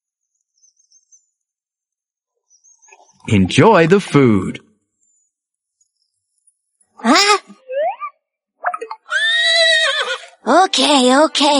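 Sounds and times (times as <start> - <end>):
speech: 3.2 - 4.6, 10.7 - 11.5
horse neighing: 9.0 - 10.4.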